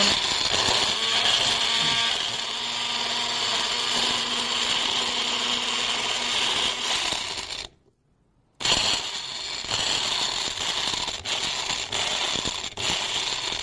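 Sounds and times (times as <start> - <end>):
electric blender blending ginger, apple and melon into juice: 0.0 - 7.7, 8.6 - 13.6.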